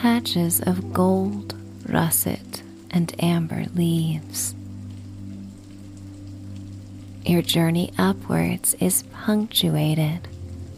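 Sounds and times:
speech: 0:00.0 - 0:04.6, 0:07.2 - 0:10.3
rain on window glass: 0:00.0 - 0:10.7.

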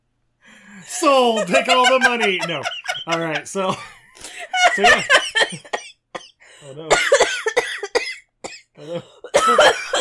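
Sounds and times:
speech: 0:00.8 - 0:05.8, 0:06.6 - 0:07.4, 0:08.8 - 0:10.0
laughter: 0:01.0 - 0:05.8
harsh coughing into the microphone: 0:05.1 - 0:10.0.

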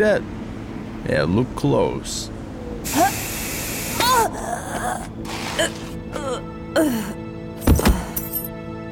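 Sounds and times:
speech: 0:00.0 - 0:00.4, 0:01.0 - 0:03.0, 0:04.2 - 0:07.2
aerosol sleep spray hissing into a face: 0:02.9 - 0:04.0
museum guard gasping and choking: 0:04.0 - 0:08.2.

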